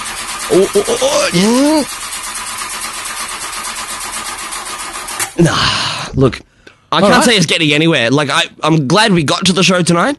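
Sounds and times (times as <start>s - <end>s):
voice imitating car engine cranking and failing to catch: 0.0s - 5.9s
speech: 0.5s - 2.1s, 5.4s - 10.1s.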